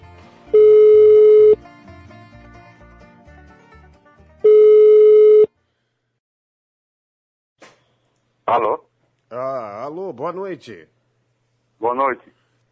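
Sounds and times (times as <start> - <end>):
telephone ring tones on the line while a call is being placed: 0.6 - 1.6, 4.4 - 5.5
speech: 8.5 - 11.0, 11.8 - 12.4.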